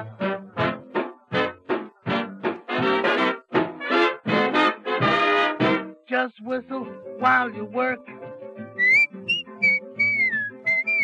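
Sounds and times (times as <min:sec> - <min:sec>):
steady musical accompaniment: 0:00.0 - 0:11.0
speech: 0:06.2 - 0:08.2
person whistling a cheerful bright melody: 0:08.8 - 0:11.0.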